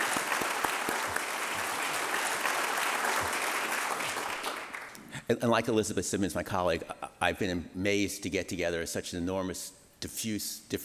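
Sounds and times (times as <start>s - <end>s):
audience applause: 0.0s - 5.0s
speech: 5.3s - 10.8s.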